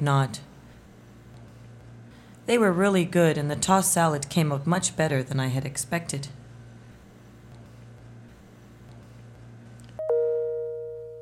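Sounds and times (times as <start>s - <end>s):
speech: 0.0s - 0.5s, 2.5s - 6.4s
steady low hum: 0.0s - 11.2s
two-note ding-dong doorbell chime: 10.0s - 11.2s.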